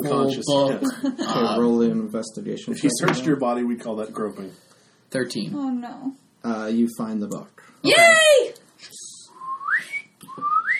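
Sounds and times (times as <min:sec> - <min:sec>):
speech: 0:00.0 - 0:08.6
person whistling two rising upward-sliding notes: 0:09.1 - 0:10.7.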